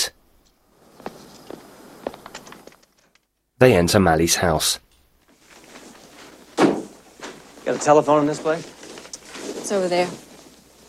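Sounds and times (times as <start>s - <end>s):
footsteps of someone walking from a car to a house porch: 0.9s - 2.9s, 5.2s - 10.8s
speech: 3.6s - 4.9s, 7.7s - 8.8s, 9.7s - 10.3s.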